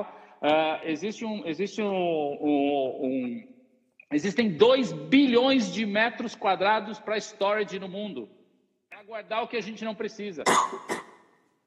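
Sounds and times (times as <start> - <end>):
speech: 0.0 - 3.5, 4.1 - 8.4, 9.0 - 11.0
person sneezing: 10.4 - 11.1.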